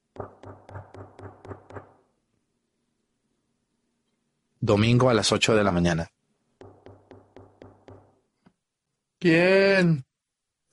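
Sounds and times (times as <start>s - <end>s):
urgent knocking on a house door: 0.1s - 2.0s, 6.6s - 8.2s
speech: 4.7s - 6.2s, 9.2s - 10.1s.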